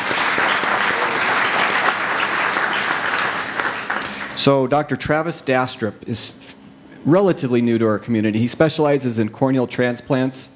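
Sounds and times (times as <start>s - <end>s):
audience applause: 0.0s - 4.5s
speech: 4.4s - 10.5s.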